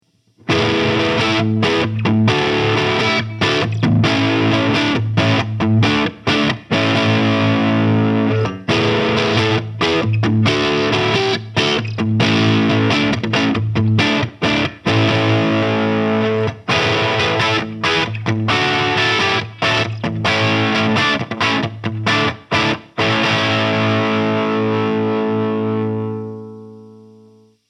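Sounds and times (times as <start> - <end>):
1961 Epiphone Les Paul electric guitar crunch: 0.1 - 27.6.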